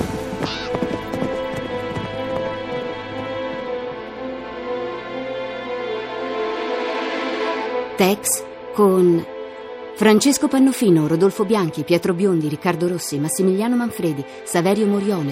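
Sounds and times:
horse hooves clip-clopping as riders set off: 0:00.0 - 0:03.8
steady tonal backdrop: 0:00.0 - 0:15.3
speech: 0:08.0 - 0:09.4, 0:10.0 - 0:15.3.

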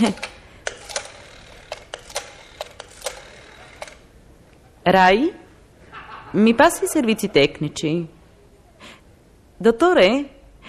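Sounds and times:
speech: 0:00.0 - 0:00.3, 0:04.8 - 0:05.4, 0:06.3 - 0:08.2, 0:09.6 - 0:10.6
crisp mechanical clicks of a telephone number being dialed: 0:00.0 - 0:04.0
laughter: 0:05.8 - 0:07.8.

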